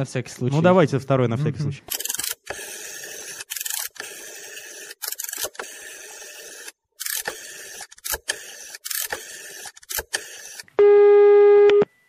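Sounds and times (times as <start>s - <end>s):
speech: 0.0s - 2.1s
telephone ringback tone during a phone call: 10.8s - 12.0s.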